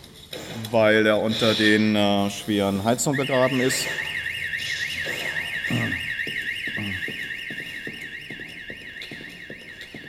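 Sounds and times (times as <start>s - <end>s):
speech: 0.7s - 4.1s
fire alarm wailing during a fire experiment: 2.3s - 10.0s.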